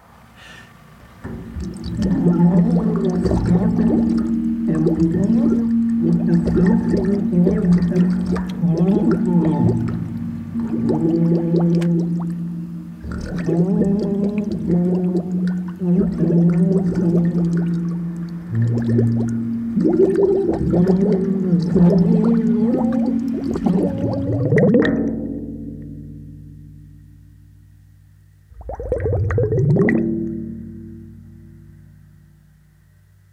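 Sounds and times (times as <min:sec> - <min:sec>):
low quiet rumble: 0:00.0 - 0:33.3
person singing and speaking underwater as an experiment: 0:01.7 - 0:25.3.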